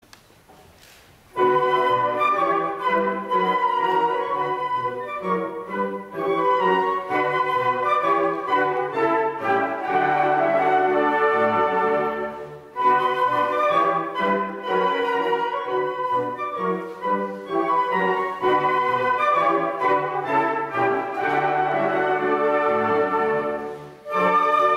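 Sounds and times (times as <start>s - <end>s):
whistle: 1.4s - 11.6s, 12.8s - 23.3s, 24.0s - 24.7s.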